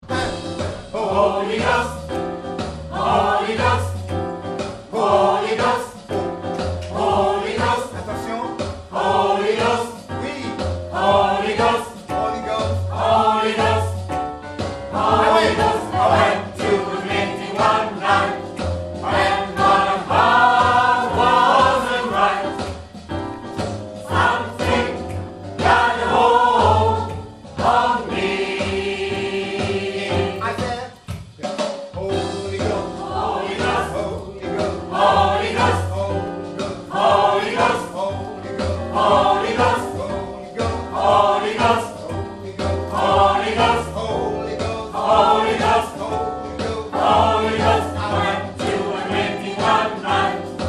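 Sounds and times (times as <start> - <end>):
soprano and bass voices: 0.0 - 23.1, 23.8 - 30.6, 32.0 - 50.6.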